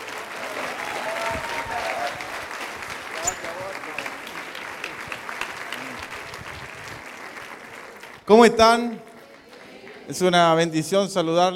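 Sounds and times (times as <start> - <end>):
large audience applause at a religious ministry service: 0.0 - 8.4
speech: 8.4 - 9.1, 10.1 - 11.5.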